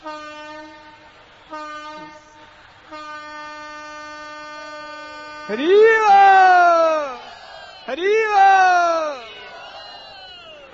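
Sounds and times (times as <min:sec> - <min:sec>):
passing train horn blasts: 0:00.0 - 0:05.8
speech: 0:05.5 - 0:06.6, 0:07.9 - 0:08.8.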